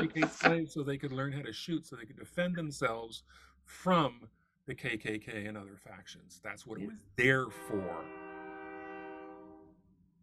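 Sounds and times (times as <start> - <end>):
laughter: 0.0 - 3.0
speech: 0.0 - 8.2
train horn blast from a passing train: 7.2 - 9.7.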